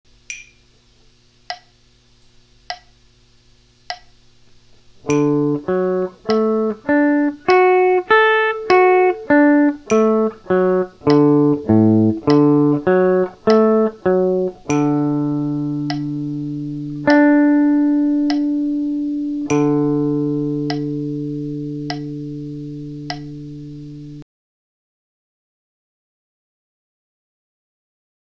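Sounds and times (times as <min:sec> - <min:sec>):
guitar arpeggio in A form: 0:05.0 - 0:24.2.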